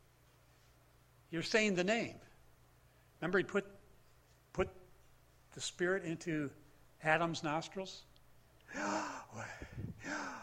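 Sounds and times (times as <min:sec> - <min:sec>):
speech: 0:01.3 - 0:02.3, 0:03.2 - 0:03.8, 0:04.6 - 0:04.8, 0:05.5 - 0:08.1, 0:08.7 - 0:10.4
heavy raspy breathing: 0:08.7 - 0:10.4.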